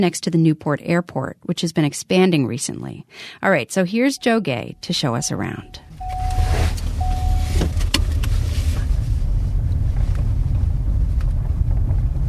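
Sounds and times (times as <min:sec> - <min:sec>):
speech: 0:00.0 - 0:05.9
faint tone: 0:04.0 - 0:07.7
car engine and road rumble driving around a landfill perimeter fence: 0:04.8 - 0:12.2.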